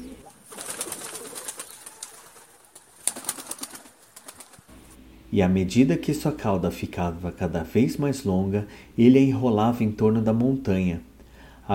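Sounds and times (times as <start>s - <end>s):
doves or pigeons cooing: 0.0s - 5.0s
wings fluttering: 0.0s - 5.0s
speech: 5.3s - 11.1s.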